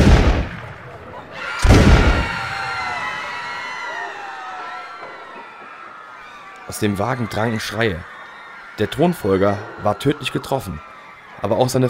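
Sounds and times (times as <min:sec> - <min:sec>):
pistol shots fired at a car stopped on a bridge: 0:00.0 - 0:01.0, 0:01.6 - 0:02.5
speech: 0:06.7 - 0:08.1, 0:08.8 - 0:11.8.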